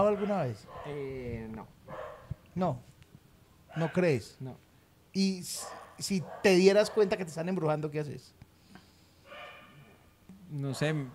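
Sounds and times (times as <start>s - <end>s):
faint dog barking: 0.0s - 1.1s, 1.9s - 2.4s, 3.7s - 4.1s, 5.6s - 7.3s, 9.3s - 10.0s
speech: 0.0s - 2.0s, 2.6s - 2.9s, 3.7s - 8.4s, 10.5s - 11.1s.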